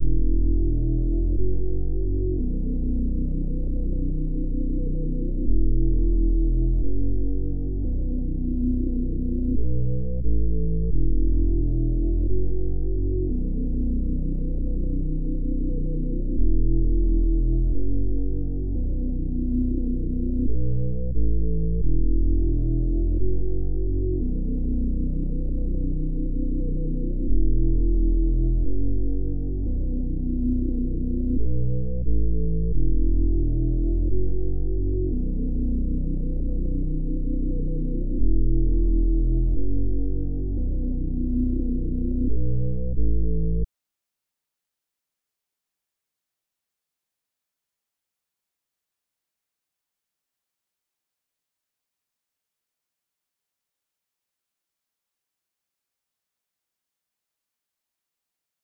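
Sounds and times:
bass melody loop in B minor: 0.0s - 43.6s.

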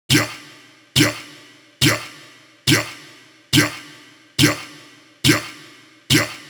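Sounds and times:
vocal chant loop: 0.1s - 0.4s, 1.0s - 3.0s, 3.6s - 6.4s.

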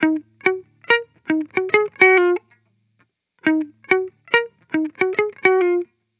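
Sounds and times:
hip hop guitar loop: 0.0s - 2.5s, 3.4s - 5.9s.

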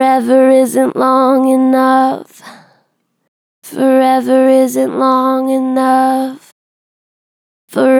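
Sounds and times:
person singing with natural gentle vibrato: 0.0s - 2.6s, 3.7s - 6.5s.

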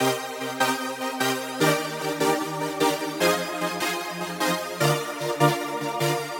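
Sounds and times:
synth chord loop in G minor at 150 BPM: 0.0s - 6.3s.

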